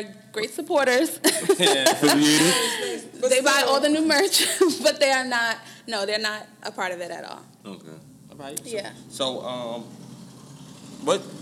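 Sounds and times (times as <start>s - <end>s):
speech: 0.0s - 10.0s, 11.0s - 11.4s
laughter: 1.2s - 5.0s
car passing by with low engine rumble: 8.8s - 11.4s.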